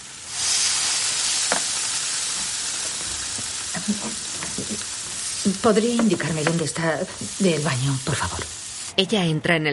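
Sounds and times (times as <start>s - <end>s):
gyoza sizzling in a frying pan after water is added: 0.0s - 9.0s
steamy hiss of water added to a frying pan: 0.0s - 9.0s
speech: 5.5s - 9.7s.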